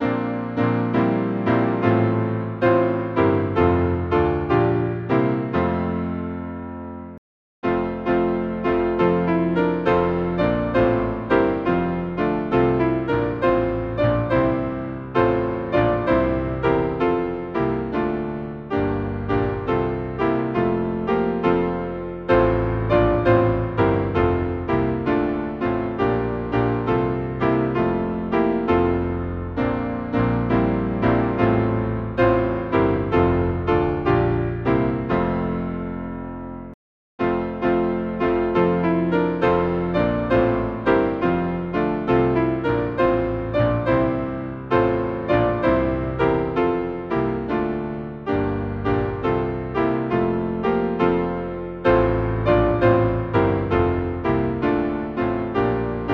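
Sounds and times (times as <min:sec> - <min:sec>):
hymn played on piano: 0:00.0 - 0:56.1.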